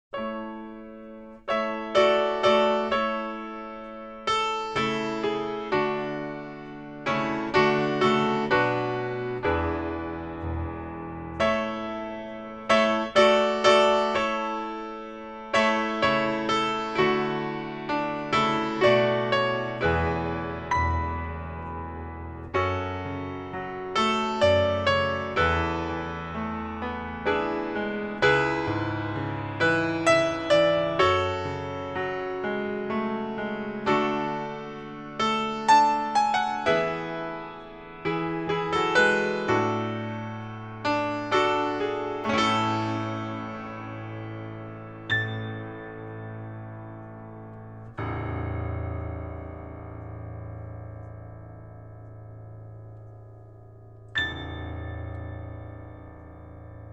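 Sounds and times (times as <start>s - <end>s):
instrumental piano: 0.0s - 56.9s.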